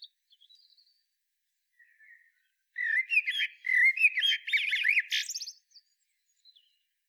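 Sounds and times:
Eurasian blackbird Turdus merula song: 1.8 - 6.8.

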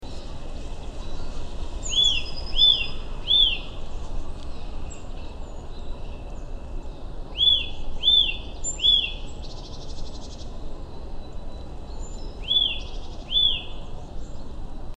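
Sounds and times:
steady background noise: 0.0 - 14.9
Eurasian nuthatch Sitta europaea giving ringing whistled calls: 1.0 - 3.8, 7.3 - 10.4, 11.9 - 13.8.

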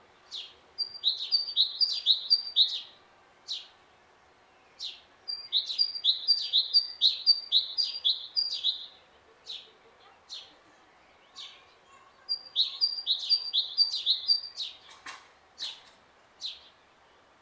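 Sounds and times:
great tit Parus major song: 0.3 - 3.7, 4.7 - 15.0.

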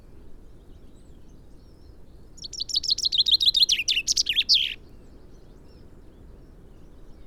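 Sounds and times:
common chaffinch song: 2.4 - 4.8.

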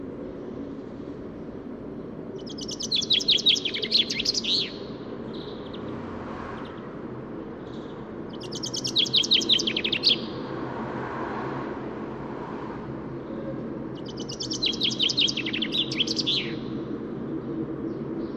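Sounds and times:
steady low rumble like traffic: 0.0 - 18.3
common chaffinch singing, Fringilla coelebs: 2.3 - 6.0, 7.7 - 10.5, 14.0 - 16.9.

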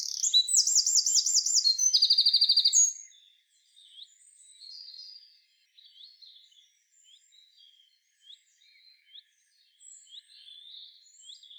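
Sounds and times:
Eurasian wren song, Troglodytes troglodytes: 0.0 - 11.5.

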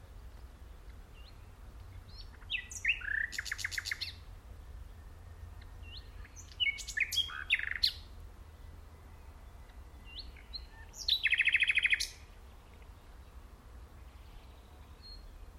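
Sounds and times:
common nightingale (Luscinia megarhynchos) song: 0.0 - 15.5.

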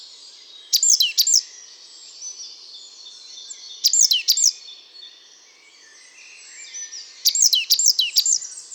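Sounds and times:
great tit Parus major calls: 0.8 - 1.4, 3.9 - 4.5, 7.3 - 8.4.

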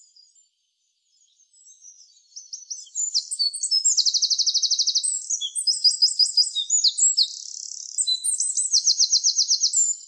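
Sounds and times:
Eurasian wren Troglodytes troglodytes singing: 2.4 - 10.0.

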